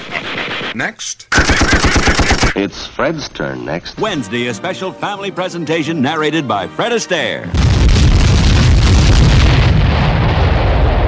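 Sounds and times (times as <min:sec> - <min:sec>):
speech: 0:00.8 - 0:01.9, 0:02.6 - 0:07.8
crackling debris: 0:07.5 - 0:11.0
explosion booming into a heavy rumble: 0:07.5 - 0:11.0.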